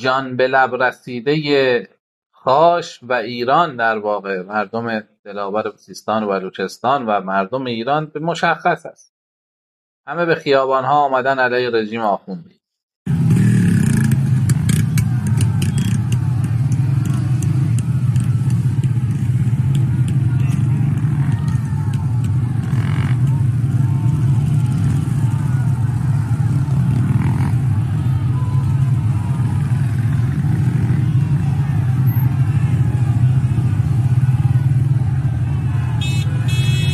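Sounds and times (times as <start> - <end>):
speech: 0.0 - 9.1, 10.1 - 12.6
motorcycles riding through a street protest in Khash, Iran: 13.1 - 36.9.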